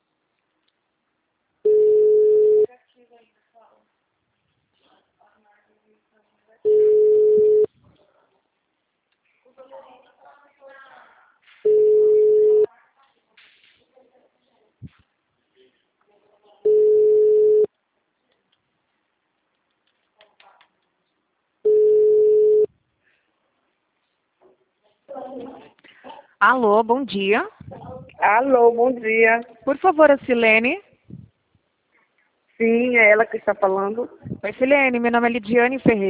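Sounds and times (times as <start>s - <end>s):
telephone beeps while a call is redialed: 1.7s - 2.7s, 6.7s - 7.7s, 11.7s - 12.7s, 16.7s - 17.7s, 21.7s - 22.7s
speech: 26.4s - 30.9s, 32.6s - 36.0s.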